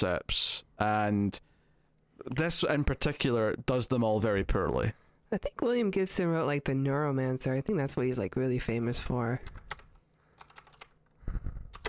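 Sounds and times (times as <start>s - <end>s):
speech: 0.0s - 1.5s, 2.2s - 9.8s
clacky keystrokes on a mechanical keyboard: 9.4s - 10.9s, 11.7s - 11.8s.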